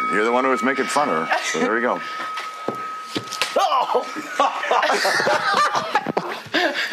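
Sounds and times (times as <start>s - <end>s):
speech: 0.1s - 2.4s, 3.6s - 6.9s
people laughing: 1.1s - 2.3s, 3.6s - 6.9s
hand slapping someone's buttocks: 3.2s - 3.6s
people yelping: 3.5s - 6.4s.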